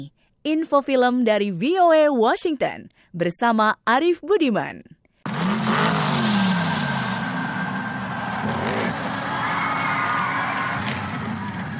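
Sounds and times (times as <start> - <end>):
speech: 0.0 - 5.0
racing cars revving and speeding past: 5.3 - 11.3.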